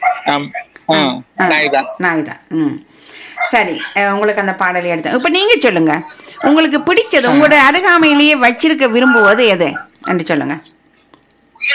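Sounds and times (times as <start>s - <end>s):
dog barking: 0.0s - 0.7s, 3.3s - 4.1s
speech: 0.2s - 10.8s.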